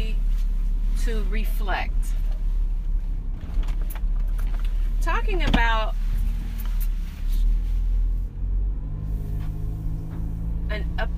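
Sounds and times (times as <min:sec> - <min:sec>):
low engine rumble of a moving car: 0:00.0 - 0:11.1
road drone in a moving car cabin: 0:00.0 - 0:11.1
speech: 0:01.0 - 0:02.2, 0:05.0 - 0:06.0, 0:10.7 - 0:11.1
faint clicks and rattles in a car cabin: 0:02.2 - 0:07.4.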